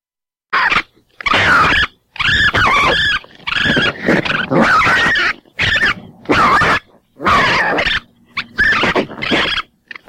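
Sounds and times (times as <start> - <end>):
raccoons giving harsh squealing snarls: 0.5 - 10.0
several raccoons fighting: 0.5 - 10.0.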